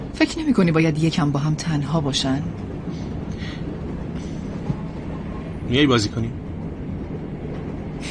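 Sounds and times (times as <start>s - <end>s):
train carriage interior rumble: 0.0s - 8.0s
speech: 0.2s - 2.7s, 5.7s - 6.4s.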